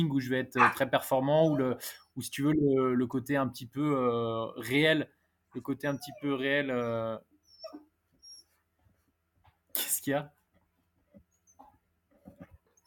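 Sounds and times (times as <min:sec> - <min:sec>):
speech: 0:00.0 - 0:07.8, 0:09.8 - 0:10.4
dog whining: 0:00.6 - 0:02.1, 0:05.8 - 0:08.7, 0:11.2 - 0:12.8.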